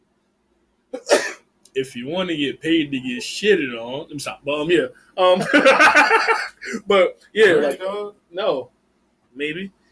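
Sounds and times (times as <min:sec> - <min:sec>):
person sneezing: 0:01.0 - 0:01.4
speech: 0:01.8 - 0:08.7, 0:09.4 - 0:09.8
laughter: 0:05.3 - 0:06.9.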